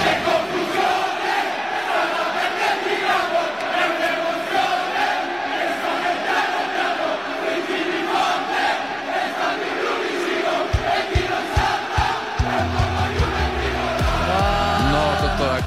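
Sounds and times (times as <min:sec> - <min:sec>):
crowd of football fans singing a chant at San Siro stadium in Italy: 0:00.0 - 0:15.6.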